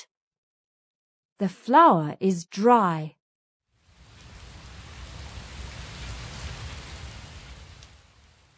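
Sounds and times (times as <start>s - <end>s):
speech: 1.4s - 3.2s
steady dense rain falling: 3.7s - 8.5s
low rumbling undertone: 3.8s - 8.5s.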